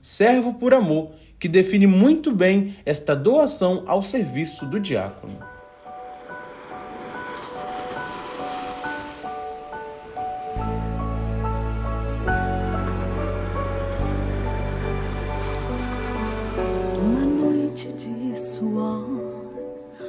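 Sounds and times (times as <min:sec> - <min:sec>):
speech: 0:00.0 - 0:05.5
soft sustained instrumental chords of a hymn-like religious song intro: 0:04.7 - 0:19.5
gentle surf-like wash: 0:05.4 - 0:19.5
deep bass: 0:10.6 - 0:17.5.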